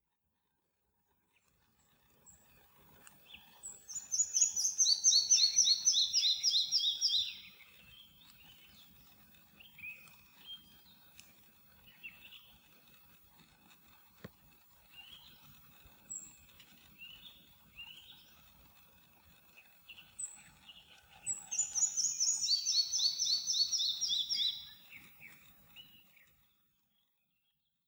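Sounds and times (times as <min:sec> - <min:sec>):
little flycatcher calling: 0:03.9 - 0:07.7, 0:21.2 - 0:24.8.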